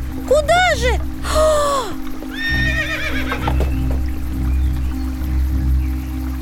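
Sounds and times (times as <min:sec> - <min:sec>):
hoof movement in water: 0:00.0 - 0:06.3
steady rushing of river water: 0:00.0 - 0:06.3
horse whinnying while wading into a river: 0:02.3 - 0:03.8.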